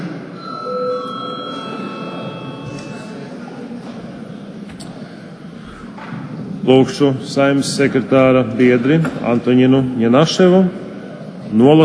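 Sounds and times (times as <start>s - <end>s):
murmur of people talking faintly in a large room: 0.0s - 11.8s
parliament chamber electric bell ringing: 0.4s - 3.4s
people shuffling: 0.9s - 6.9s
speech: 6.6s - 10.8s, 11.5s - 11.8s.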